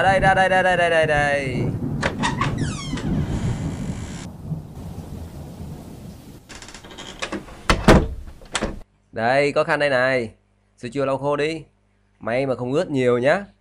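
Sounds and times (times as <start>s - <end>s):
speech: 0.0s - 1.8s, 9.2s - 13.5s
heavy rain: 0.0s - 8.8s
low rumbling thunder: 0.0s - 8.8s
recording studio door creaking open: 2.0s - 4.3s, 6.5s - 8.8s
sharp thuds: 6.6s - 8.8s.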